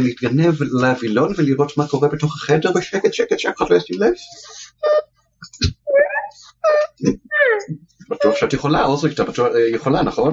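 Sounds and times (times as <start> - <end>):
speech: 0.0 - 5.8, 6.6 - 10.3
person making whiny wavering cries: 5.9 - 8.6.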